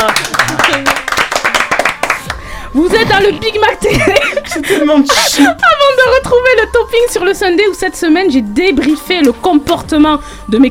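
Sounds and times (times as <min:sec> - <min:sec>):
audience member in a radio studio clapping hands: 0:00.0 - 0:02.5
voices talking and laughing: 0:02.8 - 0:06.5
speech: 0:02.8 - 0:10.6.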